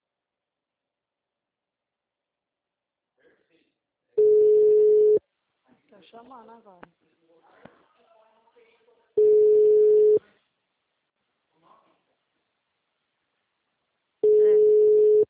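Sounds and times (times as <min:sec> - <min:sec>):
telephone ringing tone on the line: 0:04.2 - 0:05.2, 0:09.2 - 0:10.2, 0:14.2 - 0:15.2
speech: 0:05.9 - 0:07.7.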